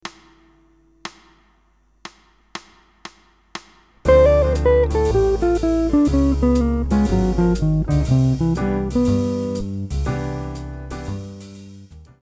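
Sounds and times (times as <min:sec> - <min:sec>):
guitar playing a scale exercise: 0:04.1 - 0:10.2.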